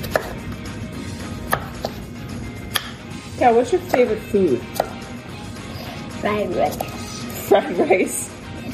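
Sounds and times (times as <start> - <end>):
knife chopping zucchini into strips: 0.0 - 0.5, 1.3 - 2.0, 2.7 - 3.0, 3.8 - 5.1, 6.7 - 7.5
speech: 3.4 - 4.8, 6.2 - 8.2.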